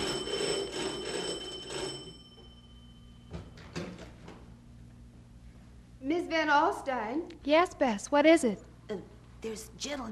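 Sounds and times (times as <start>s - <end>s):
bright doorbell chime at the front door: 0.0s - 3.8s
speech: 6.1s - 10.1s.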